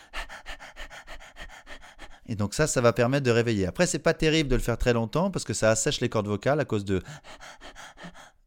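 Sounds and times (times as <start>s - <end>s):
person panting rapidly like a dog as a breathing exercise: 0.0s - 2.8s, 7.0s - 8.4s
speech: 2.3s - 7.5s.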